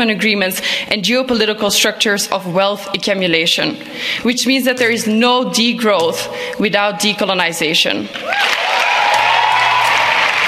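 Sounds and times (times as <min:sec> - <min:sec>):
speech: 0:00.0 - 0:08.8
large crowd clapping in a standing ovation: 0:08.2 - 0:10.4.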